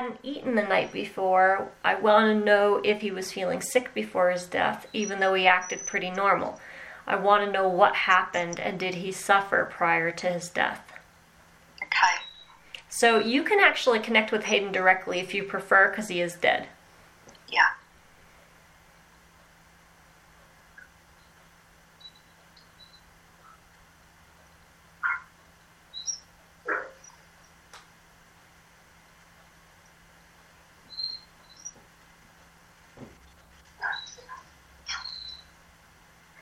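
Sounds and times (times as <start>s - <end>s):
speech: 0.0s - 10.9s, 13.0s - 16.8s, 17.5s - 17.8s
upset dog barking downstairs: 25.0s - 25.4s, 26.6s - 27.2s, 33.8s - 35.0s.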